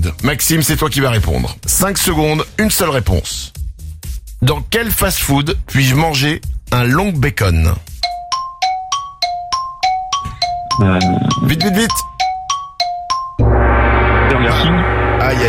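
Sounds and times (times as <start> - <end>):
speech: 0.0 - 3.6, 4.4 - 7.9, 10.8 - 12.2
bright chime ticks counting down: 8.3 - 13.4
game show gong crashing: 13.4 - 15.4.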